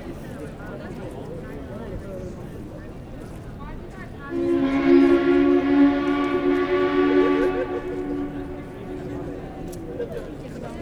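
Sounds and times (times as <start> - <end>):
crowd at a ferry terminal: 4.3 - 10.8
ship horn before departure: 4.3 - 10.8.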